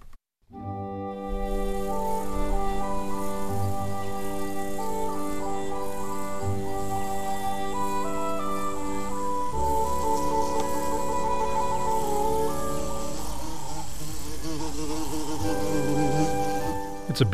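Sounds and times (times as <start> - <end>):
bumblebee buzzing: 0.9 - 17.3
speech: 17.2 - 17.3.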